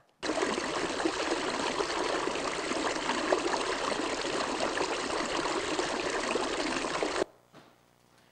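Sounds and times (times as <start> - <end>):
natural stream babbling and rushing: 0.2 - 7.2.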